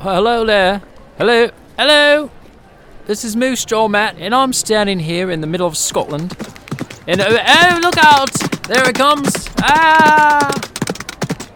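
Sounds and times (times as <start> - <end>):
speech: 0.0 - 2.4, 3.1 - 10.7
large horse's hooves clip-clopping past: 5.9 - 11.5.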